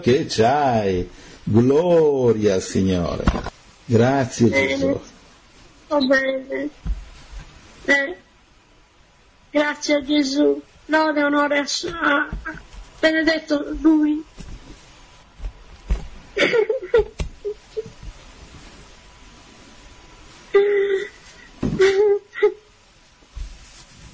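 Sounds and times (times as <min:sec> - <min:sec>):
speech: 0:00.0 - 0:05.1, 0:05.9 - 0:07.0, 0:07.9 - 0:08.2, 0:09.5 - 0:14.5, 0:16.4 - 0:17.1, 0:21.8 - 0:22.2
woman sobbing: 0:16.4 - 0:17.9, 0:20.5 - 0:22.7.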